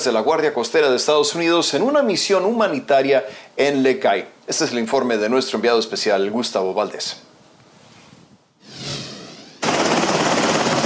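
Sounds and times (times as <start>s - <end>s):
speech: 0.0s - 7.3s
helicopter turbine whine: 8.6s - 10.8s
US Coast Guard rescue helicopter rotor noise in Haiti: 8.7s - 10.8s.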